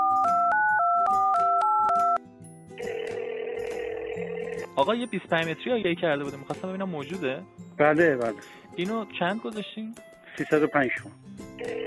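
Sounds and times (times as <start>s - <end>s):
steady telephone ringing tone on the line: 0.0s - 2.2s, 2.8s - 4.8s, 11.6s - 11.8s
touch-tone beeps of a phone number being dialed: 0.0s - 2.2s, 11.6s - 11.8s
speech: 4.8s - 11.8s.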